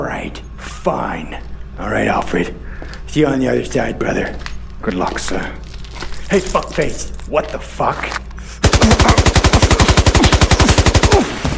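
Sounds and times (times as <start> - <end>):
speech: 0.2 - 5.6, 6.3 - 8.2, 8.8 - 9.3
rapid automatic gunfire from a video game: 8.6 - 11.5.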